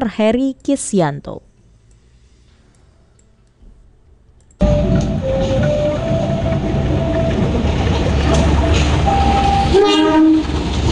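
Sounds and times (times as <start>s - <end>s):
speech: 0.0s - 1.5s
Kaligung train horn sounding sustained tones: 4.6s - 7.6s, 8.2s - 10.7s
Kaligung train wheels and engine rumbling at Batang station in Central Java: 4.6s - 10.9s.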